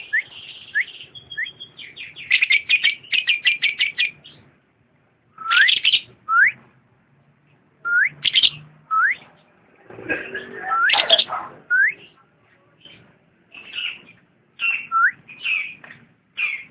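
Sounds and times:
lovebird chirping and whistling: 0:00.0 - 0:04.5, 0:05.4 - 0:06.6, 0:07.9 - 0:09.3, 0:10.2 - 0:12.2, 0:13.6 - 0:15.8, 0:16.4 - 0:16.6.

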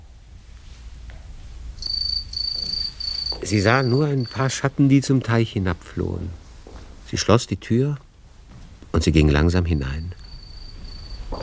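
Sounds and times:
low hum: 0:00.0 - 0:11.4
house crickets chirping in a laundry room and by a stove: 0:01.8 - 0:05.1, 0:09.0 - 0:11.4
speech: 0:03.4 - 0:06.4, 0:07.1 - 0:08.1, 0:08.9 - 0:10.2.

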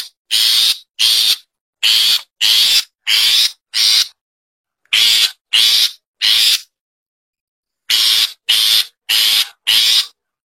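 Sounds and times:
Long-tailed Shrike repeating broad grating rasps: 0:00.0 - 0:04.2, 0:04.9 - 0:06.7, 0:07.9 - 0:10.2.

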